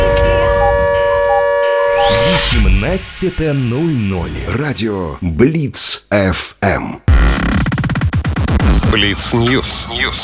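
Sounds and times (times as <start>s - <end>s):
air raid siren: 0.0s - 4.5s
speech: 2.9s - 7.6s, 8.6s - 10.2s.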